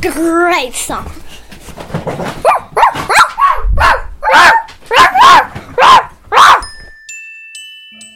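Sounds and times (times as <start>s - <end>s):
speech: 0.0s - 2.9s
dogs barking in a song: 2.4s - 6.7s.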